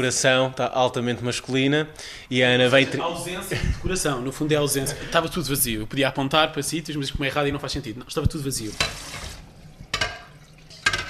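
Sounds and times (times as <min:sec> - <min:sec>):
speech: 0:00.0 - 0:09.2
laughter: 0:02.7 - 0:05.6
water splashing from a running tap while washing dishes: 0:08.3 - 0:11.0
dishes clattering: 0:08.7 - 0:11.0.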